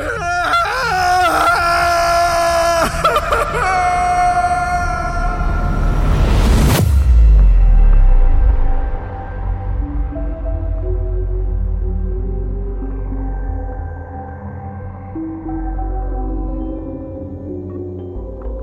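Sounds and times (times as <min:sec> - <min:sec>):
person screaming: 0:00.0 - 0:06.0
low rumble: 0:05.2 - 0:13.4.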